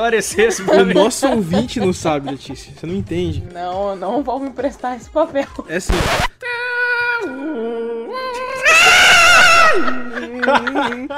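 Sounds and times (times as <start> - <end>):
speech: 0.0 - 6.4, 9.8 - 11.1
laughter: 0.4 - 2.7, 8.7 - 11.1
voice imitating a dial-up modem connecting screech: 5.9 - 6.3.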